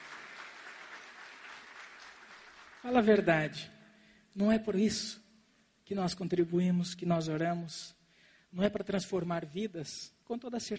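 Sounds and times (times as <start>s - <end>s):
congregation clapping at a church service: 0.0s - 3.3s
speech: 2.8s - 3.8s, 4.4s - 5.2s, 5.9s - 10.7s.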